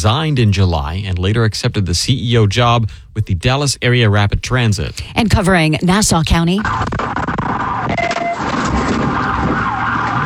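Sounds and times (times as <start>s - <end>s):
speech: 0.0s - 7.2s
police siren wailing during a vehicle pursuit in Fernandina Beach: 6.6s - 10.2s.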